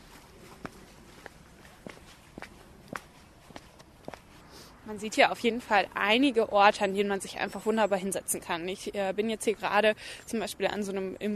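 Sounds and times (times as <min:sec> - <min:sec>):
footsteps walking along an outdoor path: 0:00.0 - 0:05.7
speech: 0:04.9 - 0:11.3.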